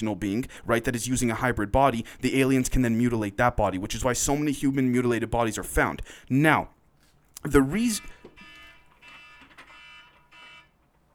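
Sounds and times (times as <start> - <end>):
speech: 0.0 - 6.8, 7.4 - 8.2
alarm with shrill buzzing electronic tone: 7.7 - 10.9.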